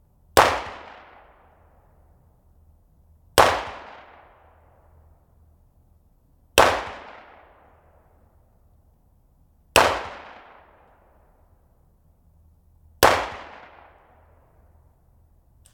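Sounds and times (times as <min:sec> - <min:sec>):
MP5 gunfire on a forest road: 0:00.4 - 0:01.5, 0:03.4 - 0:04.4, 0:06.6 - 0:07.6, 0:09.8 - 0:10.9, 0:13.0 - 0:14.3.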